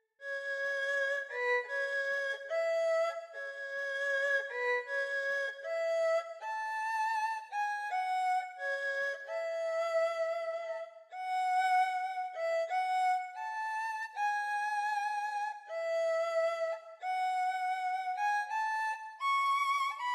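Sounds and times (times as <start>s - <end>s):
mini erhu: 0.2s - 20.1s.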